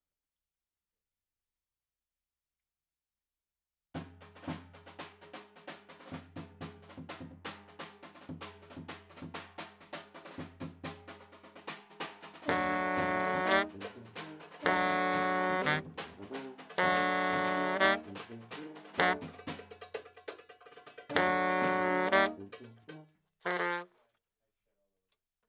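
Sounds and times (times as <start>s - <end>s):
baritone saxophone: 12.4s - 19.6s, 21.1s - 24.0s.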